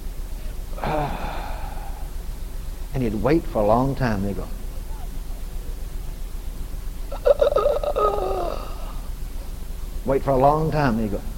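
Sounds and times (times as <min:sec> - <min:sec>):
soft hiss: 0:00.0 - 0:11.3
man imitating a dying man's slow exhale: 0:00.8 - 0:02.2, 0:07.9 - 0:09.1
speech: 0:03.0 - 0:04.6, 0:10.1 - 0:11.3.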